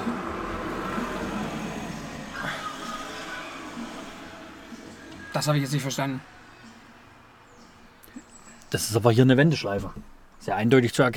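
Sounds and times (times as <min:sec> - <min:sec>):
car passing by: 0:00.0 - 0:07.4
constant road traffic rumble: 0:00.0 - 0:11.1
speech: 0:05.4 - 0:06.4, 0:08.7 - 0:11.1.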